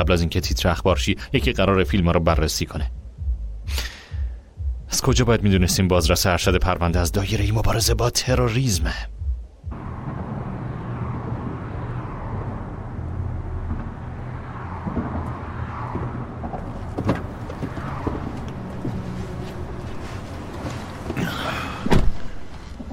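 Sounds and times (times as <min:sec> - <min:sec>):
speech: 0:00.0 - 0:03.0, 0:03.7 - 0:03.9, 0:04.9 - 0:09.2
car engine rumble: 0:00.0 - 0:22.9
sharp knocks: 0:14.7 - 0:19.0
slam-like thud: 0:21.8 - 0:22.4.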